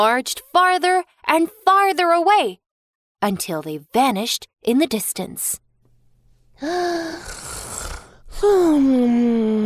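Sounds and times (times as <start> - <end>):
speech: 0.0 - 2.6, 3.2 - 5.6, 6.6 - 7.6, 8.4 - 9.6
loud drawn-out raspy snores: 7.0 - 8.4.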